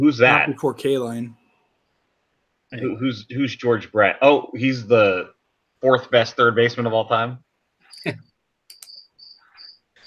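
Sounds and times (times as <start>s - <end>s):
speech: 0.0s - 1.4s, 2.7s - 7.4s, 8.0s - 8.3s
crickets chirping: 8.7s - 10.0s.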